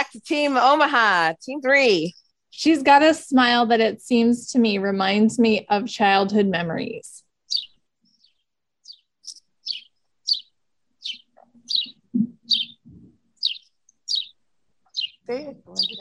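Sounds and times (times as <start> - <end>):
speech: 0.1 - 7.2, 15.3 - 15.9
bird chirping and singing: 7.4 - 15.9
low voices murmuring: 15.3 - 15.9.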